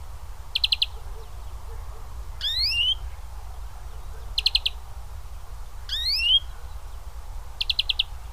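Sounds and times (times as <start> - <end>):
European greenfinch Chloris chloris calls: 0.5 - 3.2, 3.8 - 4.8, 5.9 - 6.9, 7.6 - 8.2.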